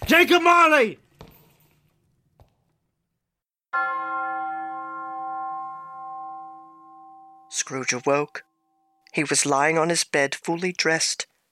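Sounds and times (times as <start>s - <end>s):
speech: 0.1s - 1.0s, 7.5s - 8.5s, 9.1s - 11.3s
deep church bell striking one o'clock: 3.8s - 7.5s.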